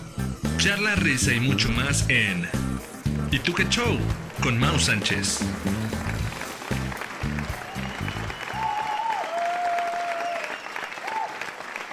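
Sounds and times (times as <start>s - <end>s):
speech: 0.6s - 6.0s
sustained applause from a crowd: 2.8s - 11.9s
crowd whistles or cheers: 7.2s - 11.9s.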